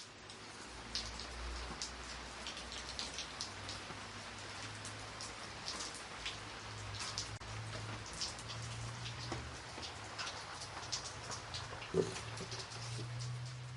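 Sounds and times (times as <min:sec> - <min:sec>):
heavy afternoon rain from a sudden downpour: 0:00.0 - 0:13.7.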